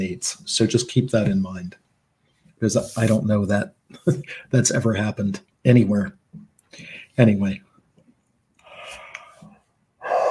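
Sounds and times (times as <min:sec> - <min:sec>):
speech: 0:00.0 - 0:01.8, 0:02.6 - 0:07.7
loud breath: 0:08.6 - 0:10.2
breathy voiced yawn: 0:10.0 - 0:10.2.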